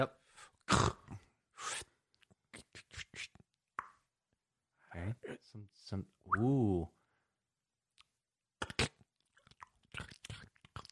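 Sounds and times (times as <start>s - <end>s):
speech: 0.0s - 1.0s, 5.6s - 7.0s
someone biting into and chewing a dill pickle: 8.6s - 10.9s.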